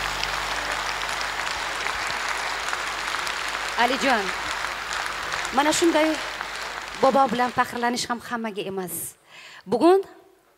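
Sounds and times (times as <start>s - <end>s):
audience applause at a singing performance: 0.0s - 8.2s
speech: 3.8s - 4.5s, 5.5s - 6.3s, 7.0s - 10.2s.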